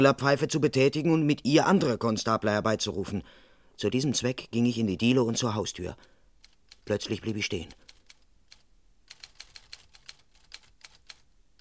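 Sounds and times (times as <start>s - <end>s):
speech: 0.0s - 6.1s, 6.9s - 7.8s
typewriter keystrokes as a woman types on the first floor of a house: 7.7s - 11.5s.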